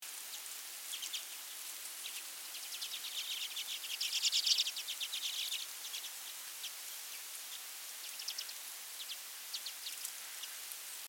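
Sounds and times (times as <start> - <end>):
steady hiss: 0.0 - 11.0
common redpoll giving thin high buzzy twittering notes: 2.0 - 6.8, 7.5 - 10.6.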